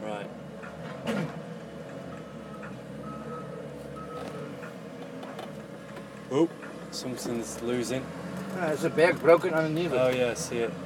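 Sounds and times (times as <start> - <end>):
delivery truck engine low steady drone: 0.0 - 10.8
delivery truck reversing alarm beeps: 2.1 - 4.5
speech: 6.3 - 10.8.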